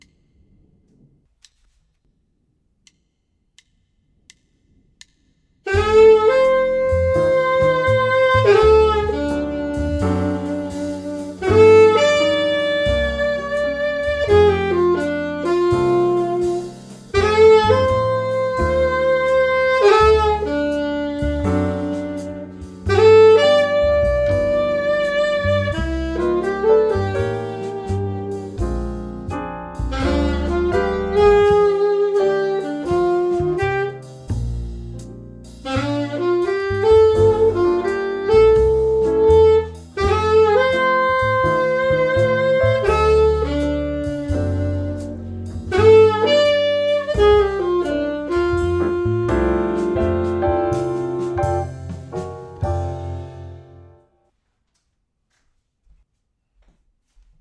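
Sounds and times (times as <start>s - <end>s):
alto medium swing: 5.6s - 54.8s.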